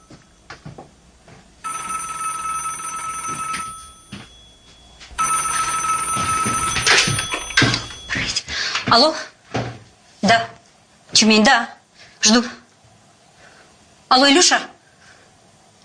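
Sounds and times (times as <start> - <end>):
telephone ringing with bright electronic rings: 0.0 - 0.5, 1.6 - 8.4
speech: 8.9 - 9.3, 11.2 - 12.6, 14.1 - 14.7.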